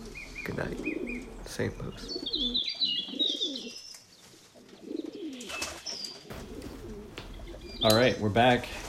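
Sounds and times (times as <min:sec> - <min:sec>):
pigeons cooing: 0:00.0 - 0:08.2
speech: 0:00.5 - 0:03.0, 0:07.8 - 0:08.8.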